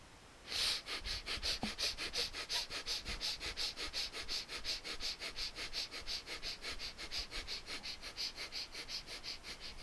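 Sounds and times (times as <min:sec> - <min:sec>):
breath of fire yoga rapid forceful breathing: 0:00.5 - 0:09.8.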